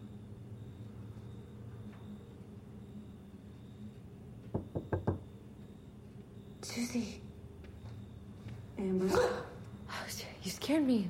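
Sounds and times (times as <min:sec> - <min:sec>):
quiet hum: 0:00.0 - 0:11.0
knocking on a bedroom door in a hallway at night: 0:04.5 - 0:05.3
speech: 0:06.8 - 0:07.2, 0:08.8 - 0:09.4, 0:10.7 - 0:11.0.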